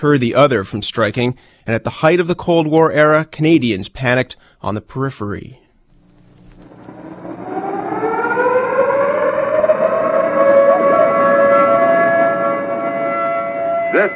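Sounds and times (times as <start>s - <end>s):
speech: 0.0s - 5.6s, 13.9s - 14.1s
civil defense air raid siren sounding a national exercise alert for Canada: 6.5s - 14.1s.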